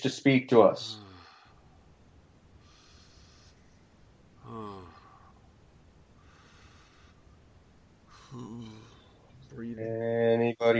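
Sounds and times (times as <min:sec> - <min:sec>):
speech: 0:00.0 - 0:01.0, 0:09.6 - 0:10.7
heavy breathing during a seance: 0:00.9 - 0:02.0, 0:02.6 - 0:05.5, 0:06.2 - 0:09.4.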